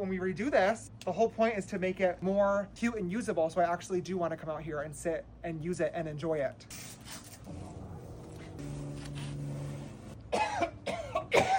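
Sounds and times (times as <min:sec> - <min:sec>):
speech: 0:00.0 - 0:07.2
steady low hum: 0:07.3 - 0:11.2
person coughing while wearing a mask: 0:10.3 - 0:11.5
throat-clearing: 0:10.3 - 0:11.5.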